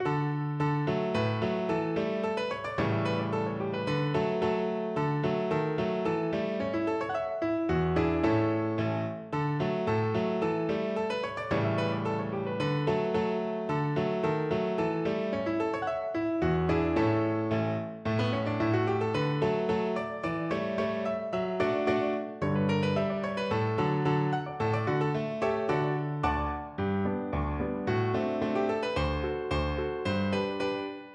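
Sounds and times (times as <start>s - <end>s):
piano piece: 0.0s - 31.1s.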